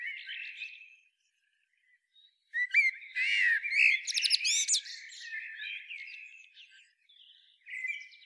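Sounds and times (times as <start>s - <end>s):
Eurasian blackbird Turdus merula singing: 2.6s - 6.0s.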